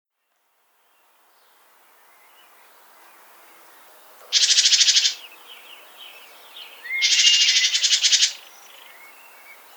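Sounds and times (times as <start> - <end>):
great tit Parus major scolding with dry pulsed churrs: 4.3 - 5.2, 6.9 - 8.4.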